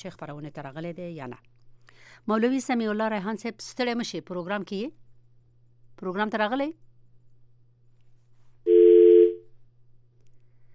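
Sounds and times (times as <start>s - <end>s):
speech: 0.0s - 5.0s, 6.0s - 6.8s
telephone line tone beep after a call is disconnected: 8.7s - 9.4s.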